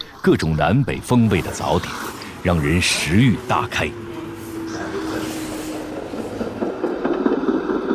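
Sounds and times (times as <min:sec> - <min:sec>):
speech: 0:00.2 - 0:04.1
train rumbling across a railway bridge over a river outside the city wall of Xiangyang China: 0:00.3 - 0:07.9.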